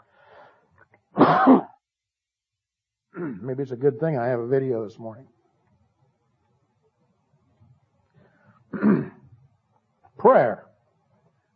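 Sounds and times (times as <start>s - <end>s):
speech: 1.2s - 1.7s, 3.4s - 5.4s, 10.2s - 10.7s
throat-clearing cough: 1.2s - 1.8s, 3.2s - 3.4s, 8.7s - 9.3s.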